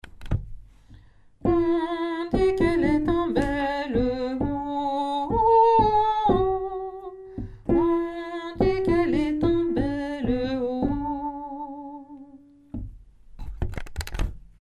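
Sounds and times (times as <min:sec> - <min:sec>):
alto voice singing: 0:01.4 - 0:12.6.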